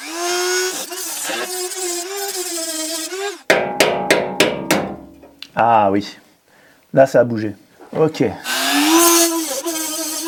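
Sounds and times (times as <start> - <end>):
power tool cutting through a rivet holding a car window: 0.0 - 3.4, 8.5 - 10.2
metallic knocks: 3.5 - 5.4
speech: 5.6 - 6.2, 6.9 - 8.5.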